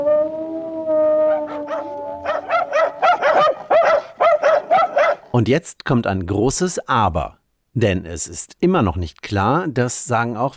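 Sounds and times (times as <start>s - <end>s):
dog howling: 0.0s - 5.2s
dog barking: 1.5s - 5.3s
speech: 5.4s - 10.5s.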